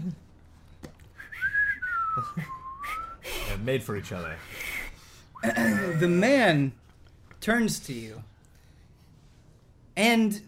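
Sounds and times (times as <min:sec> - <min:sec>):
person whistling badly: 0:01.2 - 0:03.4, 0:04.7 - 0:06.0
speech: 0:03.6 - 0:04.7, 0:05.4 - 0:06.8, 0:07.4 - 0:08.3, 0:10.0 - 0:10.4.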